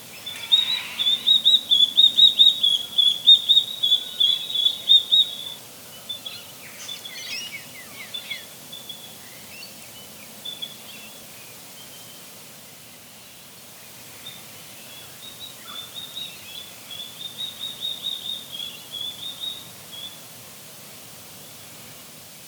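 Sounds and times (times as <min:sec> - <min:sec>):
Lophoictinia isura calling: 0:00.0 - 0:05.6.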